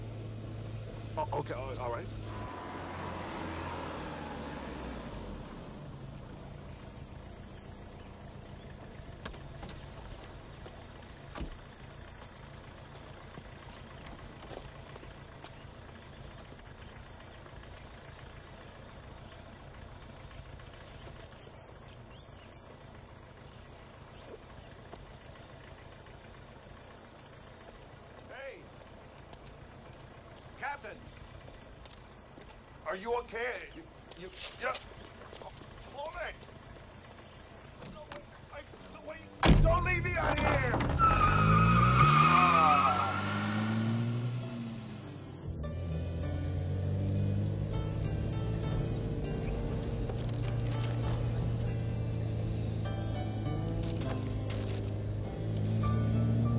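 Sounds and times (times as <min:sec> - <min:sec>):
car engine idling after pulling over: 0:00.0 - 0:56.5
speech: 0:01.2 - 0:02.4, 0:32.9 - 0:34.9.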